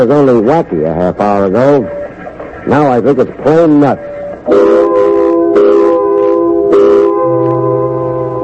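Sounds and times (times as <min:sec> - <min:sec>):
speech: 0:00.0 - 0:02.0, 0:02.6 - 0:04.8
low hum: 0:00.1 - 0:08.4
factory quitting-time whistle blaring: 0:03.9 - 0:08.4.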